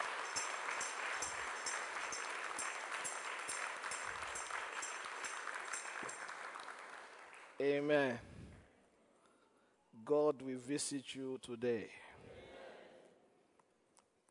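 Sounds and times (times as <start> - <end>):
audience clapping: 0.0 - 8.1
speech: 7.6 - 8.3, 10.1 - 12.0.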